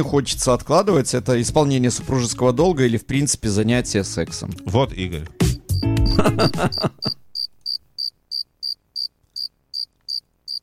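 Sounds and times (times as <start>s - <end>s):
speech: 0.0s - 5.4s, 6.1s - 7.2s
laughter: 6.0s - 7.2s
cicadas chirping: 7.0s - 10.6s.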